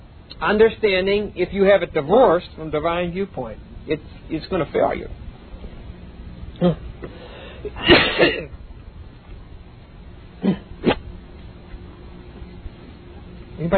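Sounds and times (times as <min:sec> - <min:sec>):
speech: 0:00.4 - 0:05.2, 0:06.6 - 0:08.6, 0:13.6 - 0:13.7
man clearing his throat: 0:06.6 - 0:06.9, 0:07.7 - 0:08.6, 0:10.4 - 0:11.0
man coughing: 0:07.7 - 0:08.6, 0:10.4 - 0:11.0.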